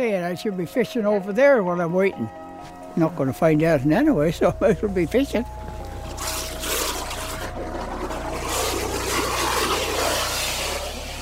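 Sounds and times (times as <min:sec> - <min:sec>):
speech: 0:00.0 - 0:05.7
steady low engine hum: 0:03.5 - 0:11.2
water churning and splashing as a diver surfaces: 0:04.0 - 0:11.2.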